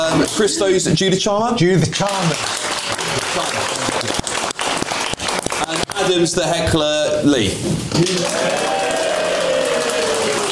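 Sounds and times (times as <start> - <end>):
speech: 0.0 - 2.7, 3.4 - 4.2, 6.1 - 8.7
audience applause at a live show: 2.0 - 6.1, 8.0 - 10.4.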